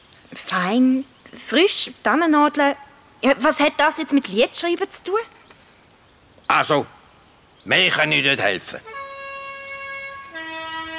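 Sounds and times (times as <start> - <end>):
speech: 0.4 - 5.4, 6.5 - 7.0, 7.6 - 8.9
bus horn blaring: 8.7 - 10.9.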